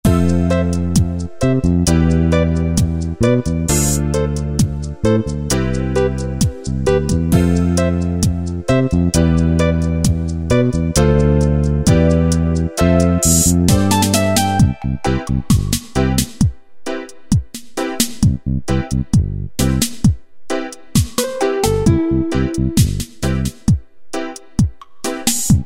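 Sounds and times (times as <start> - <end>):
lovers rock reggae style backing rhythm from a sequencer preset: 0.1 - 25.6.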